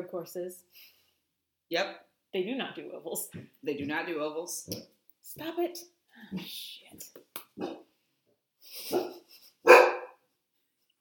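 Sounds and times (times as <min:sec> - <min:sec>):
speech: 0:00.1 - 0:01.0, 0:01.7 - 0:07.9, 0:08.7 - 0:09.8
anxious dog barking: 0:07.6 - 0:07.8, 0:08.9 - 0:10.2.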